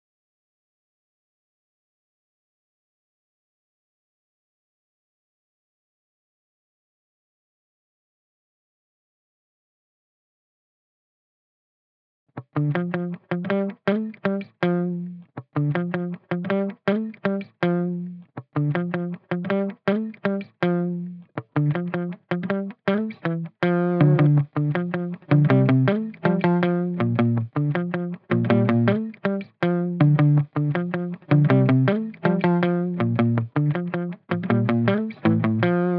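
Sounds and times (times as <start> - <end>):
80 BPM D minor muted guitar loop: 12.4 - 35.9.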